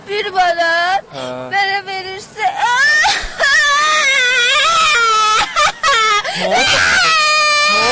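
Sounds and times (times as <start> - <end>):
speech: 0.1 - 1.7
young girl crying: 2.3 - 7.8.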